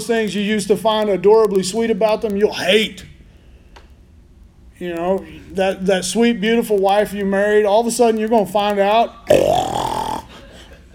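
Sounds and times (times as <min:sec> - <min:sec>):
speech: 0:00.0 - 0:03.1, 0:04.8 - 0:09.8
person imitating loud snoring: 0:09.3 - 0:10.4.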